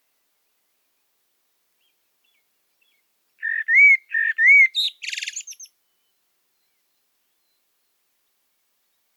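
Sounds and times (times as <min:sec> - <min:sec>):
common blackbird Turdus merula singing: 0:02.2 - 0:05.7.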